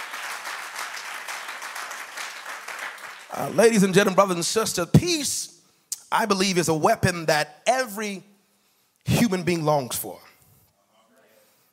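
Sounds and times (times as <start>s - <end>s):
church audience clapping: 0.0s - 4.1s
speech: 3.3s - 8.3s, 9.0s - 10.3s.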